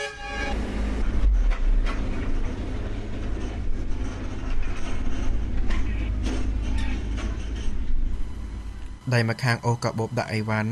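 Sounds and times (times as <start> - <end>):
train rumble and hiss at the Phnom Penh International Airport rail station: 0.0 - 10.7
scattered mechanical clatter of a train: 1.0 - 8.2
speech: 9.1 - 10.7.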